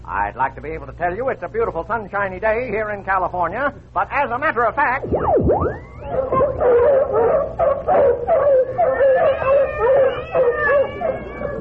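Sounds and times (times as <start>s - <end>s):
speech: 0.1s - 11.5s
dogs barking, yipping and howling: 5.6s - 11.5s
cats yowling: 5.9s - 11.5s.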